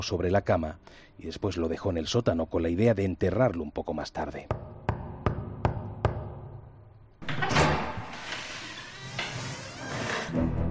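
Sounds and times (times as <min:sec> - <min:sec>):
speech: 0:00.0 - 0:04.8
front door rattling and scraping as it is opened: 0:07.2 - 0:10.4.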